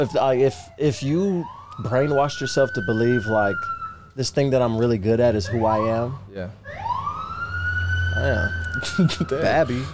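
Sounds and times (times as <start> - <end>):
speech: 0.0 - 6.8, 8.2 - 9.9
emergency vehicle siren wailing while moving through traffic: 0.0 - 9.9
low traffic rumble: 0.0 - 9.9.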